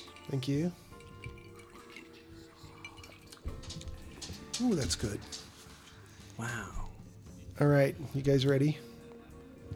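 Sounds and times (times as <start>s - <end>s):
glasses clinking in a toast: 0.0s - 6.2s
liquid sloshing and pouring: 0.0s - 7.0s
speech: 0.3s - 0.9s, 4.6s - 5.4s, 6.4s - 6.8s, 7.6s - 8.9s.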